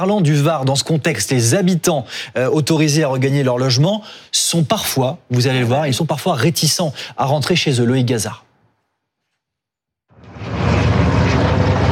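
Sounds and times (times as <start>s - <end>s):
speech: 0.0s - 8.4s
water-bomber helicopters flying overhead: 10.2s - 11.8s.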